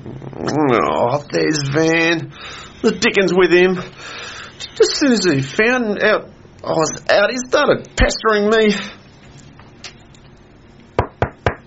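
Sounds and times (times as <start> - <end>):
speech: 0.4 - 4.2, 4.8 - 9.0
sharp knocks on a wooden door: 11.0 - 11.6.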